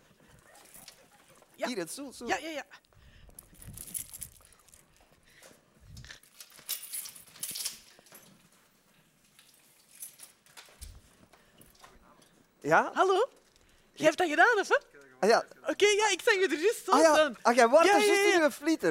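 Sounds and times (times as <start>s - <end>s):
speech: 1.6s - 2.8s, 12.7s - 13.4s, 14.0s - 18.9s
metal key being handled: 3.4s - 5.1s, 5.9s - 8.5s, 9.4s - 12.4s.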